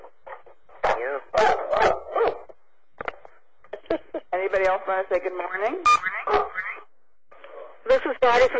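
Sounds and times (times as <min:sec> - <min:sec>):
dog barking: 0:00.8 - 0:02.5, 0:06.1 - 0:06.8
speech: 0:04.5 - 0:06.6, 0:08.0 - 0:08.5.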